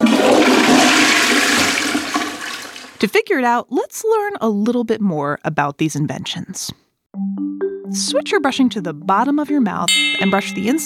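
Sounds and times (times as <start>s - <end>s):
toilet flushing: 0.0s - 3.0s
speech: 3.0s - 10.8s.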